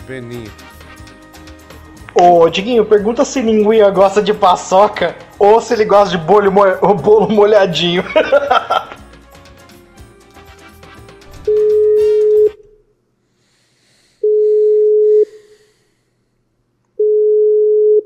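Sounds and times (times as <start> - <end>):
speech: 0.1 - 0.7, 2.2 - 8.9
laughter: 6.7 - 9.0
steady single-pitch telephone ringback tone of an unanswered call: 11.5 - 12.6, 14.2 - 15.3, 17.0 - 18.0.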